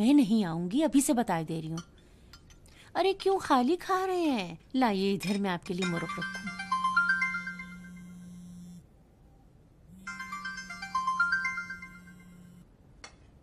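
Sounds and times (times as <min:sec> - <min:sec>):
speech: 0:00.0 - 0:01.9, 0:02.9 - 0:06.5
telephone ringtone playing a bright electronic melody: 0:05.8 - 0:08.3, 0:10.0 - 0:12.6
quiet steady low hum: 0:06.2 - 0:12.7.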